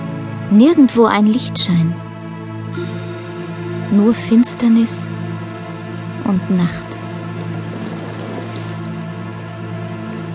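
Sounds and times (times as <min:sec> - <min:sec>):
low constant hum: 0:00.0 - 0:10.3
speech: 0:00.5 - 0:02.0, 0:03.9 - 0:05.2, 0:06.3 - 0:07.1
rushing water with a bubbling, gurgling texture: 0:02.8 - 0:10.3.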